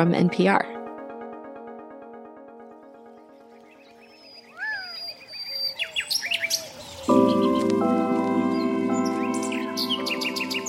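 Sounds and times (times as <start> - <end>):
speech: 0.0 - 0.8
sustained tonal music: 0.0 - 4.6, 7.0 - 10.6
birds chirping and trilling: 2.6 - 10.6.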